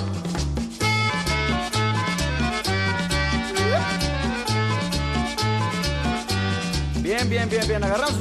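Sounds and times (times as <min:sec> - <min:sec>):
accordion playing a lively tune with reedy chords and bouncing bass: 0:00.8 - 0:07.0
speech: 0:07.2 - 0:08.1.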